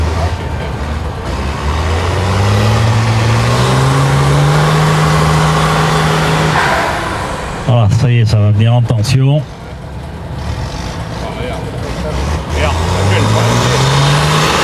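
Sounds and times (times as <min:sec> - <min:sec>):
heavy diesel engines of a truck and an excavator droning: 0:00.0 - 0:14.6
low rumble: 0:05.9 - 0:09.0
speech: 0:08.0 - 0:09.6.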